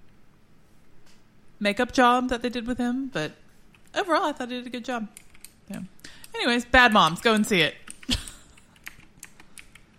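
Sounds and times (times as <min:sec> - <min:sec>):
speech: 0:01.6 - 0:08.2
computer keyboard typing: 0:05.1 - 0:09.9.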